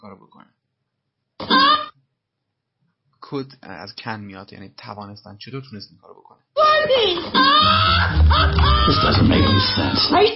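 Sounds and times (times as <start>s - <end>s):
speech: 0.0s - 0.6s, 3.3s - 10.3s
loud continuous wailing and moaning cry: 7.3s - 10.2s.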